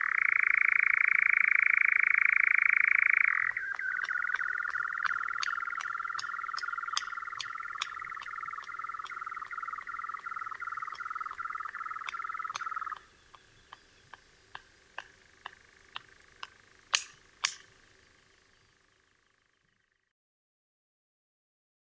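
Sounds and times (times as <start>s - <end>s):
European nightjar churring: 0.0s - 19.6s
sharp clicks: 3.0s - 17.8s.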